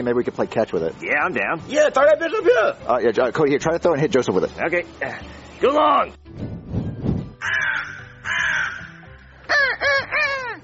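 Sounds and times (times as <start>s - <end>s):
speech: 0.0s - 6.4s
crow cawing: 7.4s - 10.6s.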